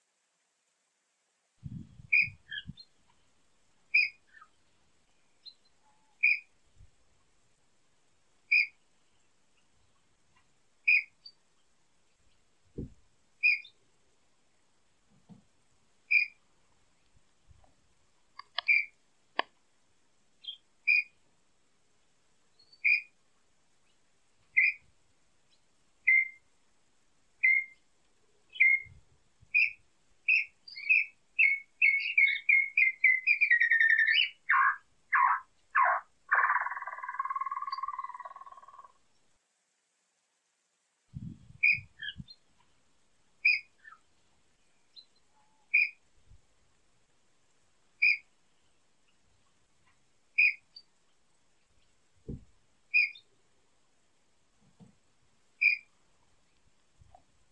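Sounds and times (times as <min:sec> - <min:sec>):
Inhambu Chororo singing: 0:02.1 - 0:02.9, 0:03.9 - 0:04.6, 0:05.4 - 0:06.5, 0:08.5 - 0:08.8, 0:10.8 - 0:11.4, 0:13.4 - 0:13.8, 0:16.1 - 0:16.4, 0:18.4 - 0:19.0, 0:20.4 - 0:21.2, 0:22.6 - 0:23.2, 0:24.6 - 0:24.8, 0:26.0 - 0:26.4, 0:27.4 - 0:27.8, 0:28.5 - 0:39.0, 0:41.6 - 0:42.4, 0:43.4 - 0:44.1, 0:44.7 - 0:46.0, 0:48.0 - 0:48.3, 0:50.4 - 0:50.9, 0:52.9 - 0:53.3, 0:55.6 - 0:55.9.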